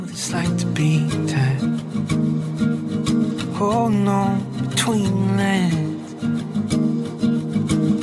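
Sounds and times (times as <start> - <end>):
person singing a sliding melismatic vocal line: 0.0 - 1.8, 3.5 - 6.3
sustained instrumental chords of a relaxing song: 0.0 - 8.0
speech: 0.2 - 1.6, 3.6 - 5.9.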